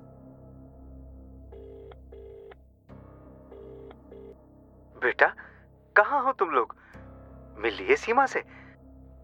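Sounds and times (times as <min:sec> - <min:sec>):
long steady telephone tone: 0:01.5 - 0:02.6, 0:03.5 - 0:04.3
speech: 0:05.0 - 0:05.4, 0:07.6 - 0:08.5.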